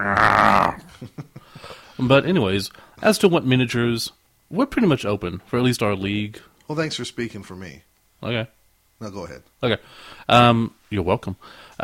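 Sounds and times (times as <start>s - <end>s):
person imitating a dog barking: 0.0s - 0.9s
speech: 1.0s - 11.8s.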